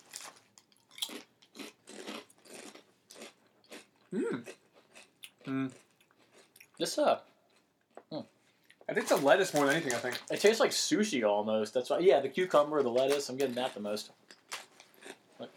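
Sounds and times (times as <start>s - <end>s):
crunchy chips being eaten: 0.0s - 6.9s, 7.5s - 10.5s, 13.0s - 15.5s
speech: 4.1s - 4.6s, 5.5s - 5.8s, 6.8s - 7.3s, 8.1s - 14.2s.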